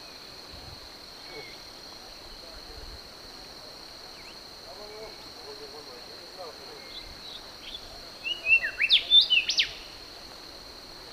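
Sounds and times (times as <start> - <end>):
brown-backed whistler song with clear whistled notes in Papua New Guinea: 6.8 - 10.0.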